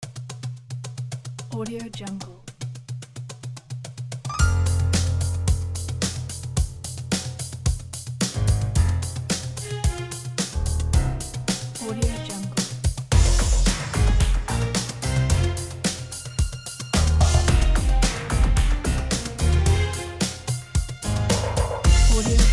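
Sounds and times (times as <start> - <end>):
piano: 4.3 - 22.5
uplifting funk music: 4.3 - 22.5
violins: 8.9 - 22.5.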